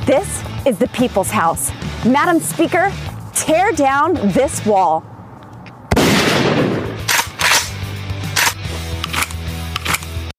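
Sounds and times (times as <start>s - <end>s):
speech: 0.1s - 5.1s
loud gunshot in a political ad: 5.9s - 7.7s
sharp cracks: 5.9s - 10.2s.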